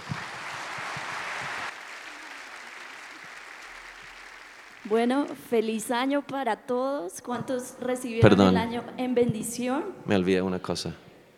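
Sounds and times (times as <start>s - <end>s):
crowd at a New Year prayer gathering applauding: 0.0s - 5.6s
speech: 4.8s - 11.0s.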